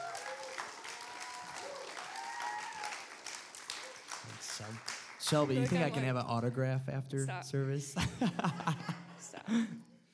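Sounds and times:
audience applause: 0.0 - 6.2
speech: 4.6 - 9.9
laughter: 8.0 - 9.8.

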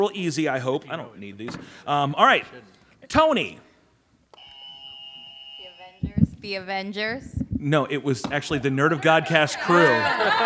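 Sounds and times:
speech: 0.0 - 3.7, 6.0 - 10.4
faint noise: 0.0 - 10.4
game show buzzer ringing in: 4.4 - 6.0
laughter: 8.6 - 10.4.

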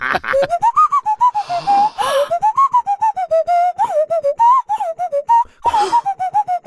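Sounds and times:
nose flute played by blowing air through the nose: 0.4 - 6.6
rushing breath noises: 1.2 - 2.4.

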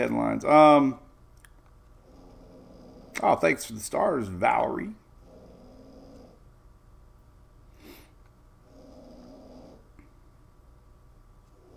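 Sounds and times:
speech: 0.0 - 1.0, 3.2 - 5.0
steady hiss: 0.0 - 11.7
dog snoring: 2.0 - 3.4, 5.2 - 6.4, 8.6 - 10.0, 11.5 - 11.7.

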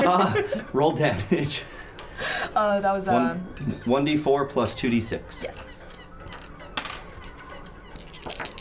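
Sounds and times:
laughter: 0.0 - 1.7
speech: 0.1 - 5.8
birds honking with goose-like calls: 5.0 - 8.5.

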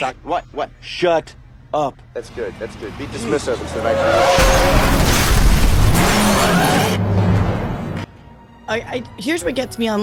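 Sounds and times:
speech: 0.0 - 5.3, 6.0 - 7.0, 8.7 - 10.0
car engine roaring: 2.3 - 8.1
car tires skidding: 2.6 - 8.0
car crash: 4.1 - 8.0.

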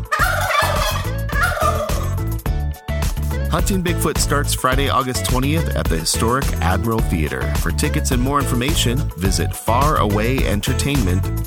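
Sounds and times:
turkey gobbling: 0.0 - 2.2
speech: 3.5 - 11.4.

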